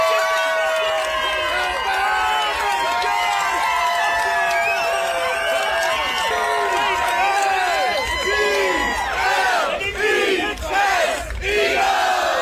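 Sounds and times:
football fans whooping and yelling: 0.0s - 9.2s
large crowd of football fans cheering and shouting at a tailgate: 0.0s - 12.4s.

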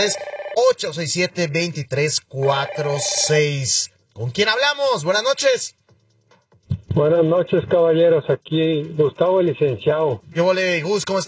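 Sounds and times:
telephone ringtone for an incoming radio call-in: 0.0s - 0.8s, 2.4s - 3.4s
speech: 0.0s - 5.8s, 6.9s - 11.2s.

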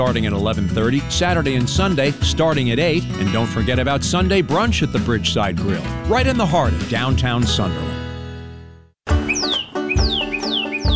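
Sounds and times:
speech: 0.0s - 8.0s
visiting songbirds tweeting at a residential community: 9.2s - 10.9s.

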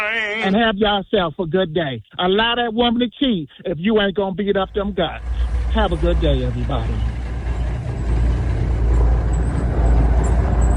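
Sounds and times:
speech: 0.4s - 7.2s
heavy semi truck engine drone: 4.5s - 10.7s.

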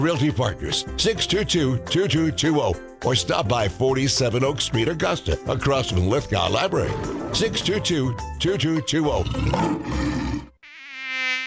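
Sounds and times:
speech: 0.0s - 10.2s
mosquito buzzing: 10.0s - 11.4s.

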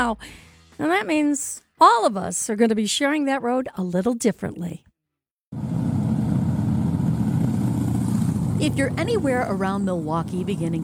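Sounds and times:
speech: 0.0s - 4.9s, 8.6s - 10.8s
Harley-Davidson motorcycle engine rumbling: 5.6s - 10.8s.

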